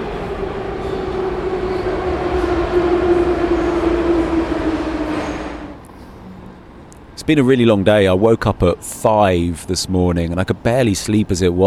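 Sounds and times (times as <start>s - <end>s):
sustained whining tone of metro train: 0.0s - 5.9s
low roar of metro train wheels: 0.0s - 6.2s
metro train rumbling: 0.0s - 7.5s
speech: 7.3s - 11.6s.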